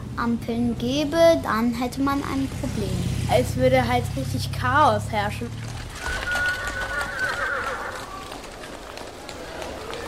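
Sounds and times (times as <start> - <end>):
speech: 0.2 - 6.2
horse-drawn carriage wheels rumbling low: 5.5 - 10.0
horse hooves clip-clopping: 5.6 - 10.0
horse whinnying with a long wavering call: 5.8 - 10.0.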